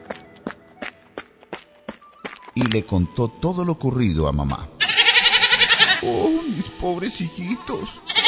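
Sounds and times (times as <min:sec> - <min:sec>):
small light footsteps running across a floor: 0:00.0 - 0:03.5
speech: 0:02.6 - 0:04.8, 0:06.0 - 0:08.1.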